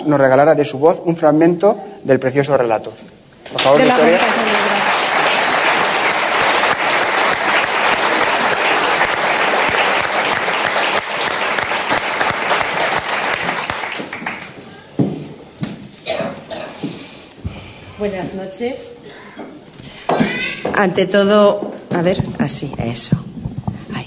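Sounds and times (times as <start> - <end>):
speech: 0.0 - 4.5, 18.0 - 18.9, 20.8 - 23.2
audience applause: 3.5 - 14.6.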